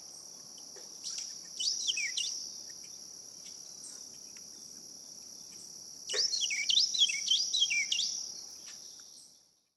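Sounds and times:
constant shrill insect hum: 0.0s - 9.7s
Carolina wren singing: 1.0s - 2.6s, 6.1s - 9.4s.

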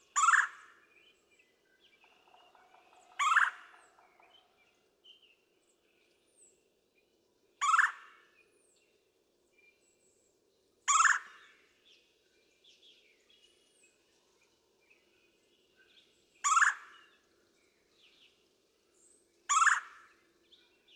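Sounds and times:
red-bellied woodpecker harsh rolling churr calls: 0.0s - 0.7s, 2.0s - 4.7s, 7.6s - 8.1s, 10.9s - 11.3s, 16.4s - 17.0s, 19.5s - 20.0s
faint chirps of other small birds: 0.0s - 20.9s.

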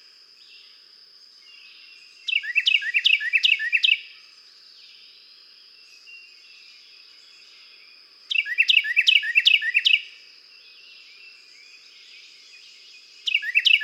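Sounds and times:
Carolina wren singing loud rolling phrases: 1.5s - 4.1s, 6.0s - 10.2s, 10.8s - 13.8s.

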